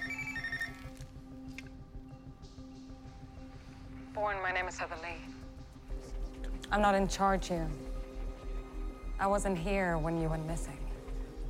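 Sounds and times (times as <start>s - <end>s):
phone ringing with a short electronic trill: 0.0s - 1.0s
steady low droning hum: 1.1s - 11.4s
speech: 4.2s - 5.4s, 6.7s - 7.9s, 9.2s - 10.8s.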